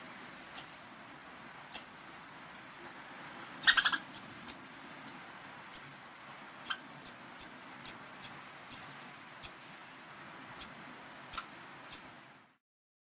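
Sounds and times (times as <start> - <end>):
faint background noise: 0.0 - 12.6
squirrel thin high chirps: 0.6 - 0.8, 1.7 - 1.9, 3.6 - 5.9, 6.6 - 9.6, 10.6 - 12.1
squirrel calling with a scratchy burst: 3.6 - 5.9, 6.6 - 9.6.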